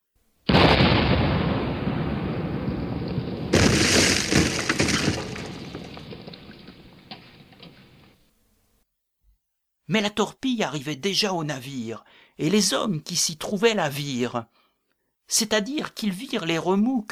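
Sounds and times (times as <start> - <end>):
artillery shell explosion shattering a dike: 0.5 - 7.5
crackling shattering debris from a dike: 0.5 - 8.2
speech: 9.9 - 14.6, 15.3 - 17.1.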